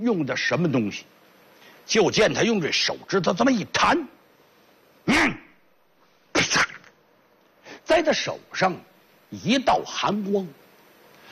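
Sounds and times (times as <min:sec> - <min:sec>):
speech: 0:00.0 - 0:01.2, 0:01.9 - 0:04.2, 0:05.0 - 0:05.5, 0:08.0 - 0:10.6
voice imitating a sneeze: 0:05.0 - 0:05.6, 0:06.3 - 0:07.0.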